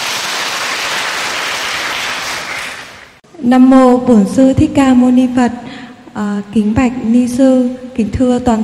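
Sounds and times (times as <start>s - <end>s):
audience applause at a Buddhist dharma talk: 0.0s - 3.2s
speech: 3.4s - 8.6s.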